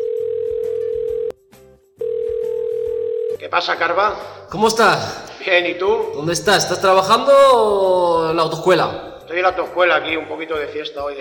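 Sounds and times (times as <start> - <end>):
telephone ringback tone while placing a call: 0.0 - 1.3, 2.0 - 3.4
speech: 3.5 - 11.1.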